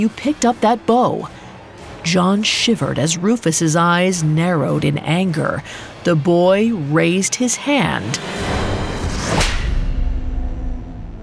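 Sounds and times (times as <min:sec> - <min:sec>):
speech: 0:00.0 - 0:01.4, 0:02.0 - 0:08.5
steady low rumble: 0:07.8 - 0:11.2
sharp slap across the face: 0:09.1 - 0:09.9.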